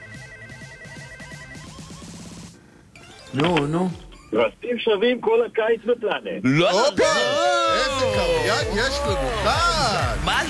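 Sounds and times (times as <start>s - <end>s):
telephone ringtone as a host places a call to a listener: 0.0s - 4.6s
speech: 3.3s - 10.4s.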